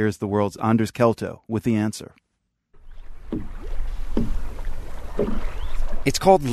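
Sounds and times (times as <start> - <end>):
speech: 0.0 - 2.2, 3.3 - 3.6, 5.2 - 6.5
oar or paddle strokes splashing from a small boat: 2.8 - 6.5
steady low rumble of water and wind on a lake: 2.8 - 6.5.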